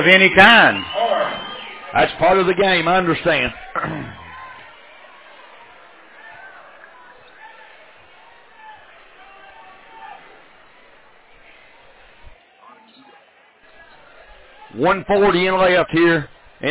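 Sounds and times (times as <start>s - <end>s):
speech: 0.0s - 1.1s, 1.9s - 4.2s, 14.8s - 16.6s
basketball arena crowd booing: 0.0s - 16.6s
people shouting in a basketball crowd: 0.4s - 13.1s.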